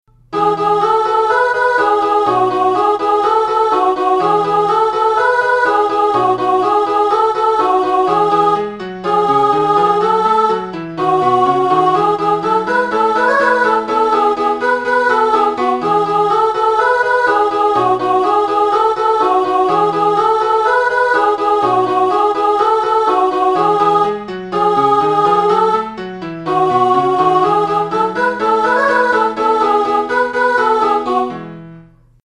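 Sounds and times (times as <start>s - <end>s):
mezzo-soprano singing: 0.3s - 31.5s.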